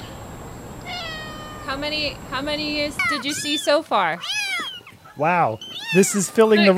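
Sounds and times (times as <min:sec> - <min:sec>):
faint hiss: 0:00.0 - 0:06.7
cat giving a high-pitched meow: 0:00.8 - 0:01.9, 0:03.0 - 0:05.0, 0:05.7 - 0:06.7
speech: 0:01.7 - 0:04.6, 0:05.2 - 0:06.7.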